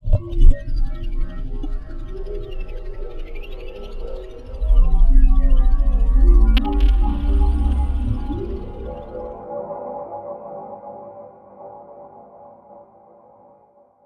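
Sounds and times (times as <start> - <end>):
eerie ambience: 0.1 - 9.8.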